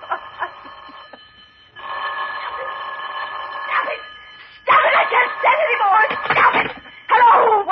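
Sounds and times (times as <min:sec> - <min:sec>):
old-fashioned telephone bell ringing: 0:00.0 - 0:07.6.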